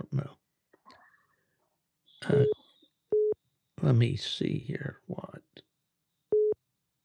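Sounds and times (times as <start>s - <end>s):
short electronic beep: 2.2s - 2.6s
speech: 3.8s - 5.2s.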